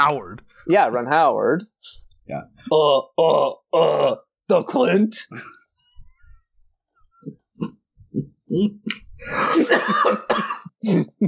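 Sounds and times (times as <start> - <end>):
speech: 0.0 - 5.6, 7.2 - 11.2
person recovering from the flu coughing: 8.6 - 11.1.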